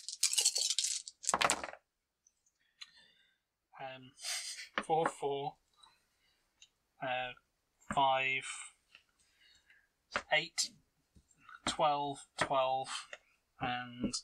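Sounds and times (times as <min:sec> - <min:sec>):
dice clattering on a hard surface: 0:00.0 - 0:01.8
people speaking and murmuring: 0:03.8 - 0:05.5, 0:07.0 - 0:08.7, 0:10.2 - 0:10.7, 0:11.7 - 0:14.2.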